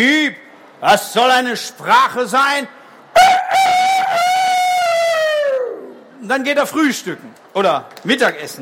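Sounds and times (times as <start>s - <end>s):
speech: 0.0s - 3.8s, 6.2s - 8.6s
person imitating a rooster crowing cock-a-doodle-doo: 3.2s - 5.9s.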